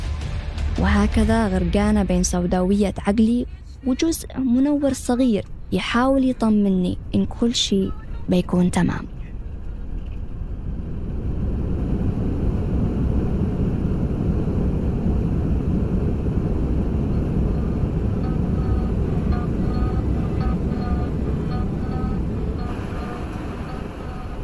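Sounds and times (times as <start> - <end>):
speech: 0.8 - 9.2
airplane in flight circling and landing, heard from inside the cabin: 0.8 - 24.4
faint high whine: 0.8 - 24.4.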